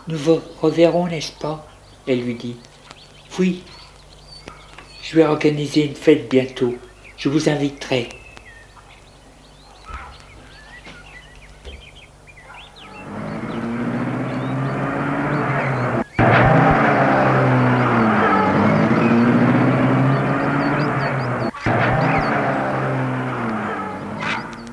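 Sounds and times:
speech: 0.0 - 2.7, 3.4 - 3.8, 5.0 - 8.2
car driving away: 9.1 - 24.7.

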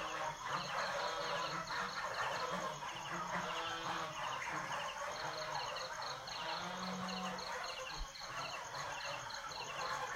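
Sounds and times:
several geese honking in Sa Pa Vietnam: 0.0 - 10.1.

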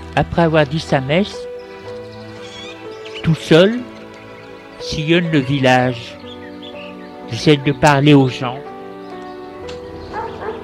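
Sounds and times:
speech: 0.2 - 1.5, 3.3 - 3.9, 4.8 - 6.2, 7.3 - 8.7
dogs barking: 10.0 - 10.6.

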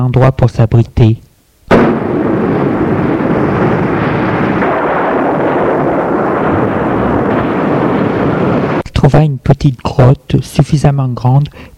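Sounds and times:
speech: 0.0 - 2.0, 9.1 - 11.7
thunder crack and rumble from violent storm: 1.7 - 8.8.

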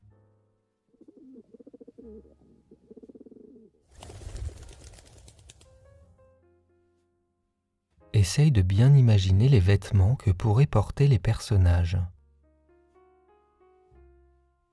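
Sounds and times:
birds cooing outside a window: 1.0 - 3.8
speech: 2.1 - 2.4, 8.2 - 12.1.

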